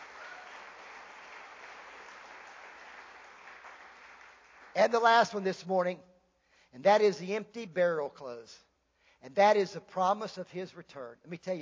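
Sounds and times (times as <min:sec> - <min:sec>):
crowd applauding: 0:00.0 - 0:05.0
speech: 0:04.8 - 0:06.1, 0:06.7 - 0:11.6.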